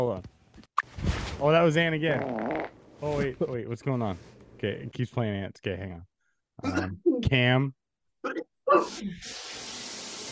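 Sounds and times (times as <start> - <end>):
speech: 1.4 - 9.6
shower water running: 8.8 - 10.3.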